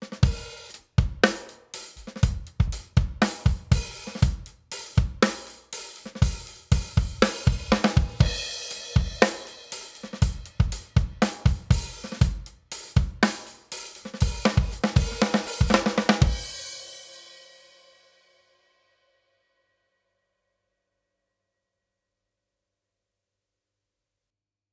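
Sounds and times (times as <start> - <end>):
drum bus with API Audio 2500 50 percent compression: 0.0 - 16.7.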